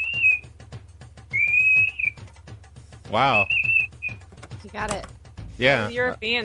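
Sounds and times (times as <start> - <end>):
person whistling a high-pitched 2600 hertz phone tone: 0.0 - 0.5, 1.3 - 2.2, 3.3 - 4.2
speech: 3.1 - 3.7, 4.7 - 6.4.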